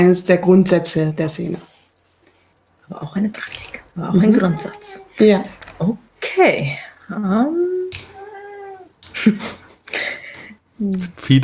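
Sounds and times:
speech: 0.0 - 1.7, 2.9 - 7.8, 9.2 - 10.0, 10.8 - 11.4
cat meowing: 3.5 - 5.8, 7.6 - 9.1.

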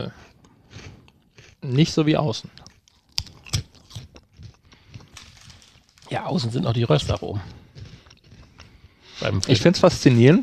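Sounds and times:
speech: 0.0 - 0.9, 1.6 - 2.7, 6.1 - 7.6, 9.2 - 10.4
person crunching cheese-flavoured puffed corn snacks: 0.2 - 1.7, 2.4 - 9.0.

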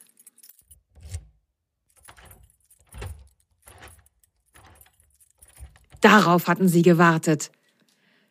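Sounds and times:
keys jangling and clinking: 0.0 - 6.2
metallic rattles and low thumps of the door lock: 0.5 - 6.2
speech: 6.0 - 7.6.

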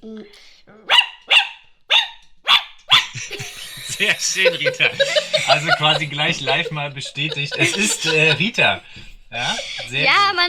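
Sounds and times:
dog barking: 0.8 - 3.3
laughter: 3.0 - 10.4
low vocal sound: 3.3 - 6.6
speech: 4.0 - 10.4.

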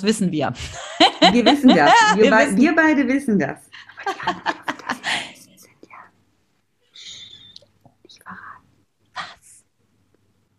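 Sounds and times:
speech: 0.0 - 4.6
faint hum: 0.0 - 10.5
laughter: 0.6 - 2.6, 4.0 - 5.4
soft breathy whispering: 3.8 - 6.2, 6.8 - 9.7.

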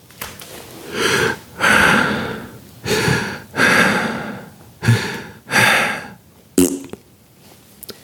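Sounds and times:
person imitating panicked heavy breathing of an astronaut: 1.0 - 6.2
person imitating a fart: 6.6 - 7.0.

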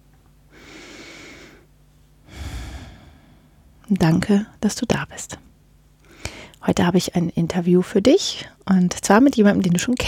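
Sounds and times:
deep breath: 0.5 - 3.8, 6.0 - 6.6
speech: 3.9 - 5.4, 6.6 - 10.0.

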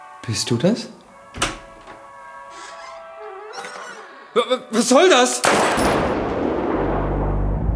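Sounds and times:
speech: 0.2 - 1.6, 4.4 - 6.2
gunshot fired in the dark in a radio play: 5.4 - 7.6.

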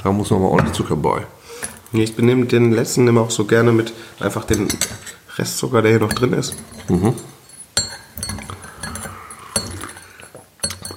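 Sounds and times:
speech: 0.0 - 7.4
broken ceramic teapot rattling and clinking as it is moved: 6.0 - 10.9.

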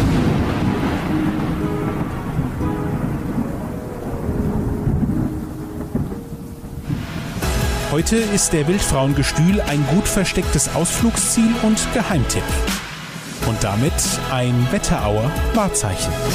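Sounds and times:
deep continuous rumbling thunder: 0.0 - 11.1
steady rain hissing: 0.0 - 16.3
speech: 8.0 - 12.8, 13.5 - 16.3.

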